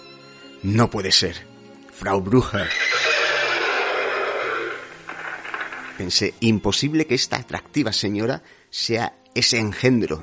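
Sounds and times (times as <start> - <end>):
speech: 0.6 - 2.8, 6.0 - 10.2
horses neighing in terror: 2.4 - 6.0.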